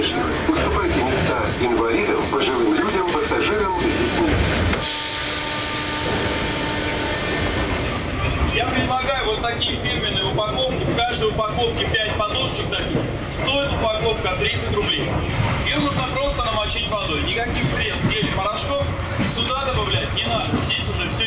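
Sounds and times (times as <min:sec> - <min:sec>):
metro train running between stations heard from inside the car: 0:00.0 - 0:21.2
rhythmic metro train wheel clatter over the rails: 0:09.7 - 0:21.2.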